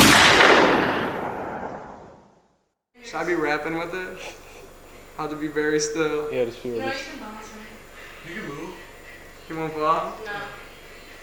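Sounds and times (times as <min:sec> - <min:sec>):
gunshot sound effect with long booming echo: 0:00.0 - 0:02.3
speech: 0:03.1 - 0:04.5, 0:05.2 - 0:08.8, 0:09.5 - 0:10.6.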